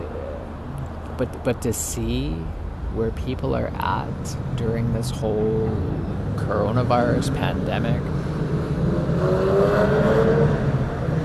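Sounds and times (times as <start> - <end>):
speech: 1.2 - 8.4, 9.2 - 9.9
Porsche engine roaring past on a city street: 4.4 - 11.2.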